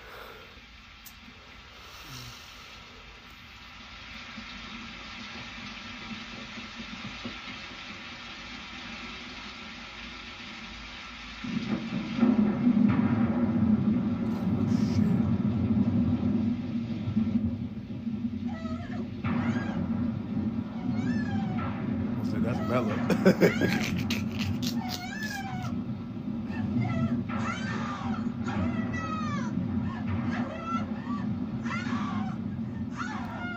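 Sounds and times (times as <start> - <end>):
heavy rain: 0.0 - 33.5
deep rolling thunder rumbling: 2.9 - 33.5
cat meowing in the rain: 18.5 - 19.9, 20.6 - 21.8, 24.7 - 25.8, 26.5 - 33.5
laughter: 22.7 - 25.0
speech: 22.8 - 24.1.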